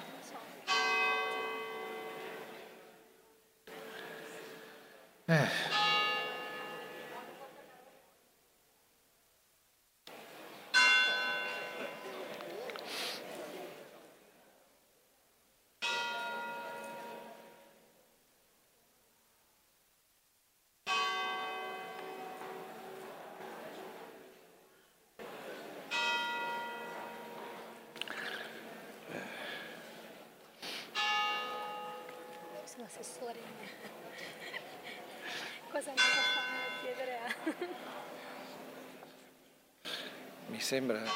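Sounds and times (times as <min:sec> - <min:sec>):
church bells ringing: 0:00.6 - 0:04.9, 0:05.6 - 0:07.6, 0:10.7 - 0:12.7, 0:15.8 - 0:17.8, 0:20.9 - 0:24.0, 0:25.4 - 0:29.9, 0:30.9 - 0:34.1, 0:34.8 - 0:39.0, 0:40.6 - 0:41.1
speech: 0:05.3 - 0:05.8, 0:32.9 - 0:33.9, 0:35.8 - 0:36.2, 0:40.6 - 0:41.1
laughter: 0:33.5 - 0:35.7, 0:37.2 - 0:38.2.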